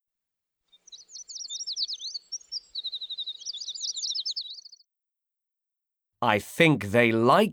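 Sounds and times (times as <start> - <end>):
bird singing a rapid song of chirps and trills: 0.7 - 4.9
speech: 6.2 - 7.5.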